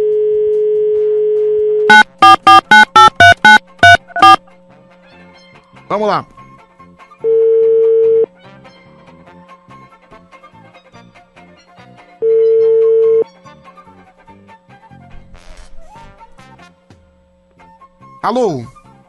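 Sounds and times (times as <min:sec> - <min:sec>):
telephone line tones while a phone call is being placed: 0:00.0 - 0:04.4, 0:07.3 - 0:08.3, 0:12.2 - 0:13.2
speech: 0:06.0 - 0:06.4, 0:18.3 - 0:18.8.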